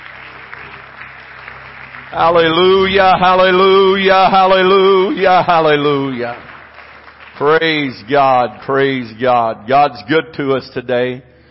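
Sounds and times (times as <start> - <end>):
low hum: 0.0 - 8.6
audience clapping hands in applause: 0.0 - 9.1
speech: 2.1 - 6.5, 7.4 - 11.3.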